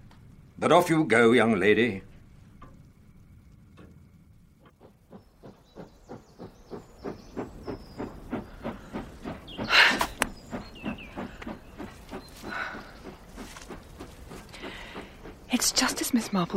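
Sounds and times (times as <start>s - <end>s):
speech: 0.6s - 2.1s
steam train chugging with clattering puffs: 4.6s - 16.5s.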